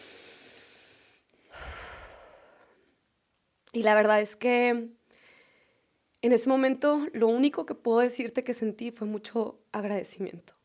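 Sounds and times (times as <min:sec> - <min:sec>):
slow audible breathing from one person: 0:00.0 - 0:03.0, 0:05.1 - 0:05.9
speech: 0:03.7 - 0:05.0, 0:06.2 - 0:10.6.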